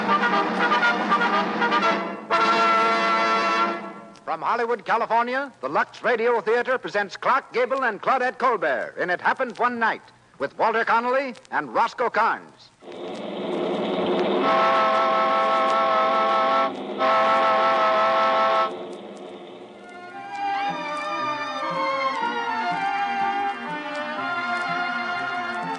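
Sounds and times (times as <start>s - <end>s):
loud horn blasts at a bus terminal: 0.0s - 4.2s, 12.8s - 22.5s
speech: 4.4s - 13.4s, 14.5s - 15.2s
traffic-like clatter at a crowded bus terminal in Miami, Florida: 12.8s - 20.6s
vehicle noise at a bus terminal: 12.8s - 22.8s
overlapping tones: 12.8s - 25.7s.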